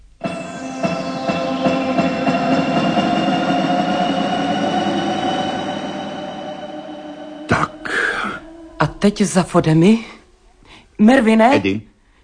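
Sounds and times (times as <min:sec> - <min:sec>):
spaceship engines roaring in a steady humming drone: 0:00.5 - 0:09.5
speech: 0:09.0 - 0:10.1, 0:11.0 - 0:11.9.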